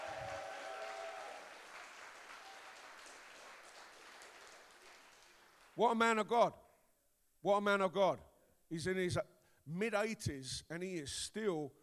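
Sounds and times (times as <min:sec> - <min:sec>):
audience applause at a church service: 0:00.0 - 0:05.8
speech: 0:05.8 - 0:06.6, 0:07.4 - 0:11.8.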